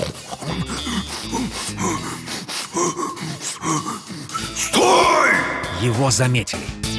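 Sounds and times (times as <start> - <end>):
heavy ragged distant panting with gasping breaths: 0.0 - 4.6
person shouting with strained vocal sounds: 4.6 - 6.3
speech: 5.8 - 6.8.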